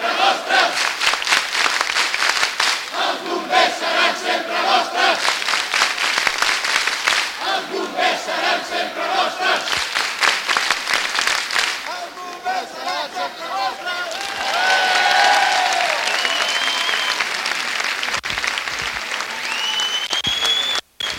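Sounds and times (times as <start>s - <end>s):
crowd applause in a town square welcoming volunteer firefighters: 0.0s - 21.1s
people cheering: 0.0s - 21.1s
people whistling: 15.8s - 17.3s, 19.4s - 21.1s.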